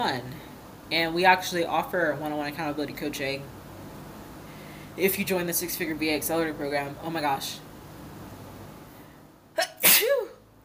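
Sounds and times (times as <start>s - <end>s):
speech: 0.0s - 3.6s, 5.0s - 7.7s
person sneezing: 9.6s - 10.4s.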